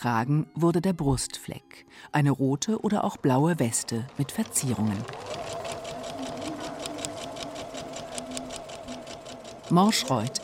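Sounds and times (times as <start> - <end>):
speech: 0.0 - 5.6, 9.7 - 10.4
several sewing machines running in a workshop: 2.8 - 10.4.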